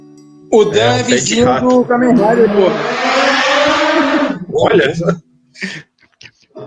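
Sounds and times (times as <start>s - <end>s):
speech: 0.5s - 3.4s, 4.6s - 5.9s
loud motorcycle roaring on the street: 1.0s - 4.8s.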